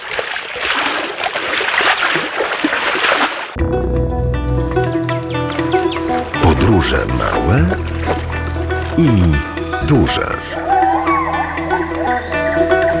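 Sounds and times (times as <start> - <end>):
steady rushing water current: 0.0 - 3.6, 5.5 - 12.9
music with sustained tones and low rhythmic pulse: 3.6 - 12.9
speech: 6.9 - 8.2, 9.0 - 10.7.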